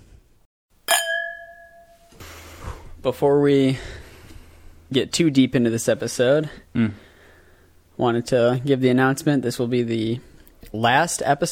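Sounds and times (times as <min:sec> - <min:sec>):
wine glasses clinking together: 0:00.9 - 0:02.2
speech: 0:03.0 - 0:04.0, 0:04.9 - 0:07.0, 0:08.0 - 0:11.4.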